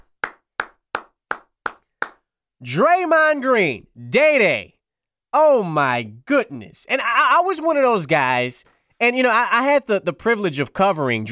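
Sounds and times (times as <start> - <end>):
person clapping hands: 0.0 - 2.2
speech: 2.6 - 11.2.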